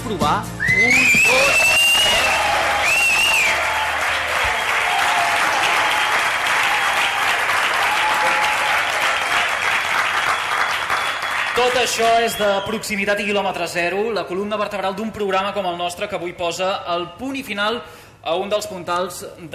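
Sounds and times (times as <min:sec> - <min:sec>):
speech: 0:00.1 - 0:02.3, 0:11.6 - 0:19.5
scattered audience cheers and whistles: 0:00.6 - 0:09.6, 0:10.2 - 0:12.8
live audience applause: 0:01.0 - 0:12.4.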